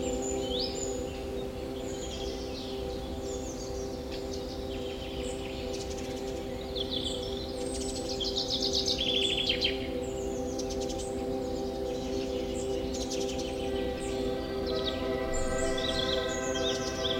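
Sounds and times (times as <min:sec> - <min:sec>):
birds chirping and trilling in a forest: 0:00.0 - 0:17.1
ringing sustained tones: 0:00.0 - 0:17.1.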